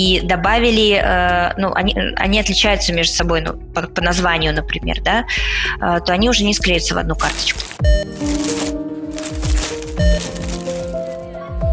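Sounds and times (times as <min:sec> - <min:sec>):
speech: 0:00.0 - 0:08.6
plastic bag crinkling and rustling: 0:07.2 - 0:11.2.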